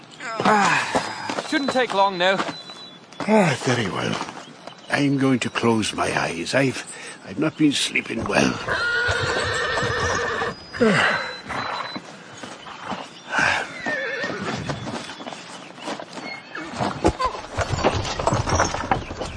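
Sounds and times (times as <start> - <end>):
horse hooves clopping and shuffling: 0.0 - 19.3
speech: 1.5 - 2.6, 3.2 - 4.3, 4.9 - 9.5, 10.8 - 11.2
horse held for a hoof check whinnying: 8.3 - 12.0, 13.4 - 14.9.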